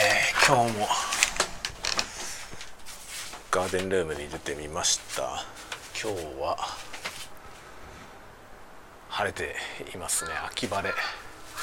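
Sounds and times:
speech: 0:00.5 - 0:01.1, 0:03.6 - 0:06.9, 0:09.2 - 0:11.2
crow cawing outdoors on a sunny autumn morning: 0:10.1 - 0:11.6.

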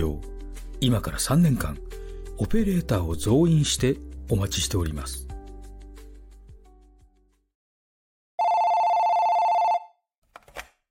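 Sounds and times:
speech: 0:00.0 - 0:05.3
telephone ringing on a call to an advice line: 0:08.4 - 0:10.0.

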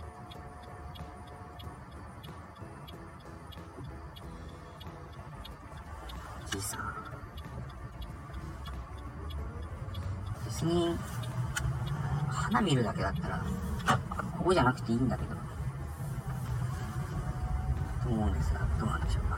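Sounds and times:
car rumbling as it approaches along a narrow street: 0:00.0 - 0:19.3
regular faint ticking: 0:00.0 - 0:19.3
speech: 0:06.6 - 0:07.2, 0:10.6 - 0:11.1, 0:12.5 - 0:15.4.

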